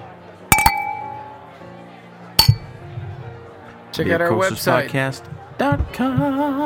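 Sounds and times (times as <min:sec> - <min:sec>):
glasses clinking in a toast: 0:00.5 - 0:01.4, 0:02.4 - 0:02.7
soft murmur of voices: 0:01.6 - 0:06.6
speech: 0:04.0 - 0:06.6.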